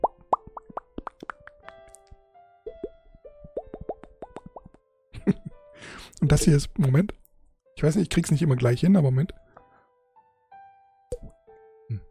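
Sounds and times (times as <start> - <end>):
lip pops made by pressing the lips together and releasing air: 0.0 - 4.8
speech: 5.3 - 7.2, 7.8 - 9.4.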